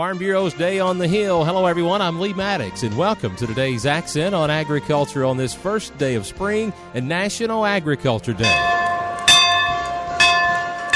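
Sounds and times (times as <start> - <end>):
speech: 0.0 - 8.9
dinner bell ringing at a farm organization's country dinner on Capitol Hill: 8.4 - 10.9.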